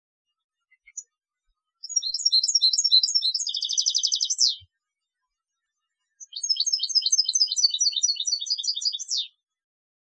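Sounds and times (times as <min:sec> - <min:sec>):
European goldfinch singing: 0:01.8 - 0:04.6, 0:06.2 - 0:09.3.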